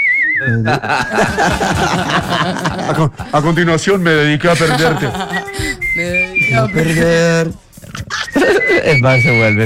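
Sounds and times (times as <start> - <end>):
person whistling a melodic phrase: 0.0 - 0.8, 5.3 - 7.2, 8.1 - 9.6
speech: 0.4 - 7.6, 8.4 - 9.6
laughter: 0.5 - 3.4, 4.5 - 5.6, 8.1 - 8.9.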